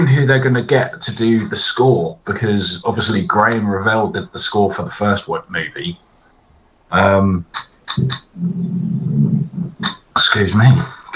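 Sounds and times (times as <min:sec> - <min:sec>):
speech: 0:00.0 - 0:06.1, 0:06.9 - 0:11.1
loud drawn-out fart: 0:07.6 - 0:10.1.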